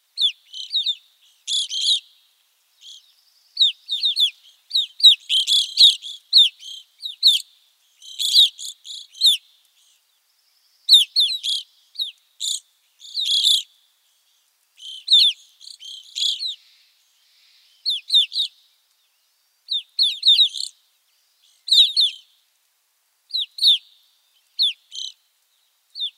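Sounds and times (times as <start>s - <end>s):
Evening Grosbeak calling: 0.2s - 2.2s, 2.8s - 10.1s, 10.9s - 18.6s, 19.7s - 20.8s, 21.4s - 22.3s, 23.3s - 25.2s.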